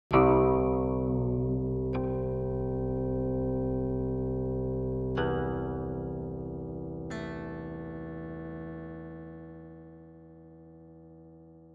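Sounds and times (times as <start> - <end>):
guqin solo: 0.1 - 9.4.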